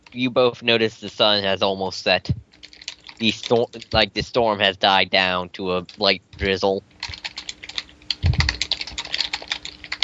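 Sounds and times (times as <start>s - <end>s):
speech: 0.1s - 2.5s, 3.2s - 6.9s
typing on a computer keyboard during an online voice call: 2.5s - 4.2s, 5.8s - 10.0s.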